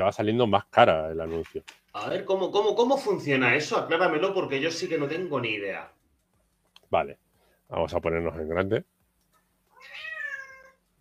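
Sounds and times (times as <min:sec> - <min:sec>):
speech: 0:00.0 - 0:06.0, 0:06.9 - 0:08.9
cat meowing: 0:09.7 - 0:10.8.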